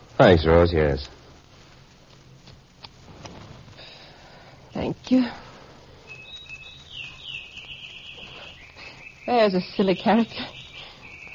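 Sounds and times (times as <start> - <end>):
low hum: 0.0 - 11.3
speech: 0.2 - 1.2, 4.8 - 5.4, 9.3 - 10.5
small bird chirping, robin or sparrow: 4.8 - 11.3.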